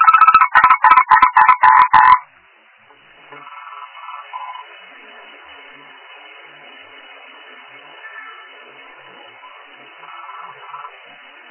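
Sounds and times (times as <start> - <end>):
frog croaking in loud pulsed notes: 0.0 - 2.2, 3.4 - 4.6, 10.0 - 11.0.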